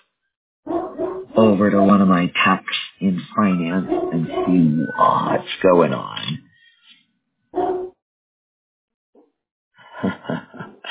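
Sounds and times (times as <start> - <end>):
loud deep dog bark: 0.7 - 2.2, 3.4 - 5.4, 7.6 - 8.0
speech: 1.4 - 6.4
laughter: 9.8 - 10.8.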